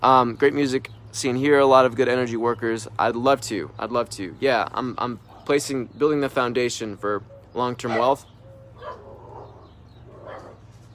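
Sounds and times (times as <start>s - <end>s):
speech: 0.0s - 9.0s
dog barking: 7.8s - 8.2s, 8.8s - 10.6s.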